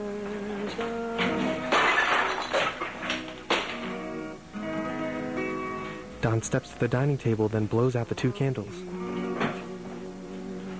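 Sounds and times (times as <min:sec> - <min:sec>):
sustained music: 0:00.0 - 0:10.7
clattering crash: 0:00.8 - 0:04.0
ceramic plate smashing against kitchen counter: 0:01.2 - 0:04.0
speech: 0:06.3 - 0:09.0.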